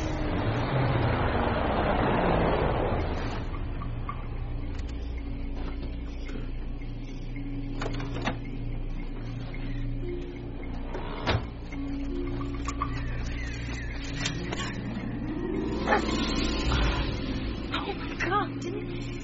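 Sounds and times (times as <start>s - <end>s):
steady low rumble: 0.0s - 19.2s
dog barking: 15.7s - 16.4s.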